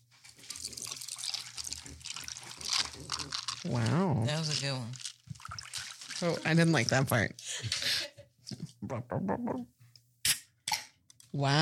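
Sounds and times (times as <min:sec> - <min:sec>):
energy drink poured over ice: 0:00.3 - 0:07.3
speech: 0:03.6 - 0:05.0, 0:06.2 - 0:07.8, 0:08.9 - 0:09.8, 0:11.3 - 0:11.5.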